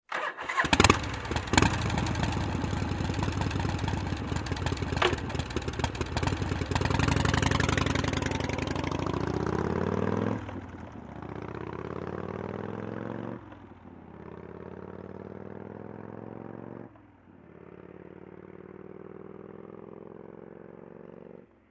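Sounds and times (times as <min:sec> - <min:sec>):
Harley-Davidson motorcycle starting: 0:00.1 - 0:13.7
Harley-Davidson motorcycle idling: 0:00.2 - 0:12.2
Harley-Davidson motorcycle driving away: 0:00.2 - 0:21.6.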